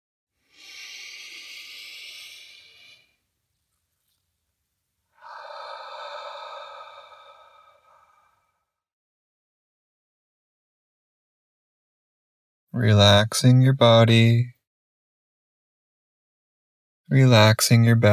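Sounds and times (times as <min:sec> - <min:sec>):
long airy inhale through the nose during guided meditation: 0:00.4 - 0:03.2, 0:05.2 - 0:08.7
soft whooshing exhale through the mouth during guided meditation: 0:00.4 - 0:03.2, 0:05.2 - 0:08.7
speech: 0:12.8 - 0:14.5, 0:17.1 - 0:18.1.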